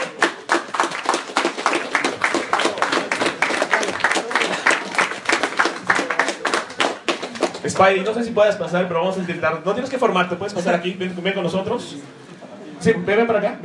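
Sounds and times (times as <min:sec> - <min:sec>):
audience clapping at a talk event: 0:00.0 - 0:07.9
speech: 0:07.7 - 0:12.2, 0:12.8 - 0:13.6.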